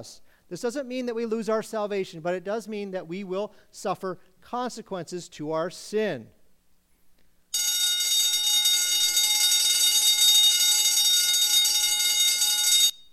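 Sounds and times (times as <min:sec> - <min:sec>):
speech: 0:00.0 - 0:06.4
loud high-pitched alarm blaring: 0:07.6 - 0:13.1.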